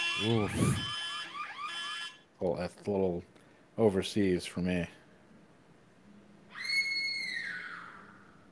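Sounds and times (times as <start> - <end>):
speech: 0.2 - 0.9, 2.4 - 5.0
girl screaming high-pitched: 6.5 - 8.4.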